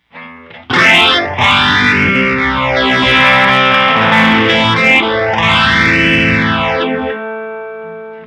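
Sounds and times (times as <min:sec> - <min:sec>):
phaser effect: 0:00.7 - 0:07.3.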